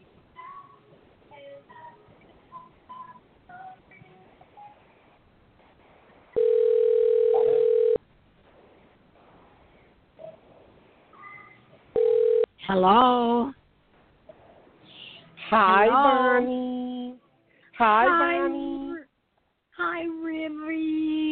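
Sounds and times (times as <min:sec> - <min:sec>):
faint murmur: 0:00.2 - 0:06.4, 0:08.4 - 0:21.2
telephone tone while dialling a caller: 0:06.4 - 0:08.0, 0:12.0 - 0:12.5
speech: 0:12.7 - 0:13.6, 0:15.5 - 0:16.7.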